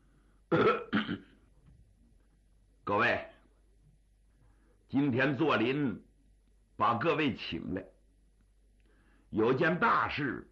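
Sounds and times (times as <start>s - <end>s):
speech: 0.5s - 1.2s, 4.9s - 6.1s, 6.8s - 8.0s, 9.3s - 10.5s
man clearing his throat: 0.5s - 1.4s.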